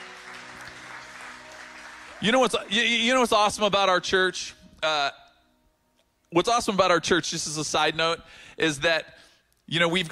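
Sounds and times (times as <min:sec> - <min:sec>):
congregation applauding: 0:00.0 - 0:02.6
speech: 0:02.2 - 0:05.2, 0:06.3 - 0:10.1.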